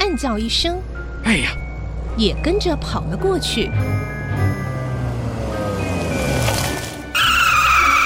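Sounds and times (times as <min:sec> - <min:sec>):
car road noise: 0:00.0 - 0:08.0
speech: 0:00.2 - 0:01.6, 0:02.2 - 0:04.2
car tires screeching while braking hard: 0:01.7 - 0:08.0.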